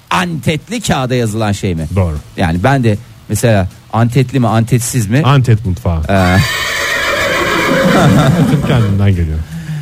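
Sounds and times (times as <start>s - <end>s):
speech: 0.2s - 6.7s, 8.0s - 9.5s
horse neighing: 6.1s - 9.0s
laughter: 7.5s - 9.0s.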